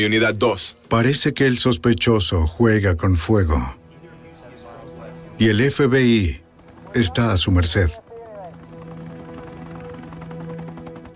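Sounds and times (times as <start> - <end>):
speech: 0.0 - 3.8, 5.4 - 8.0
helicopter rotor chopping while flying along a highway: 4.6 - 11.1.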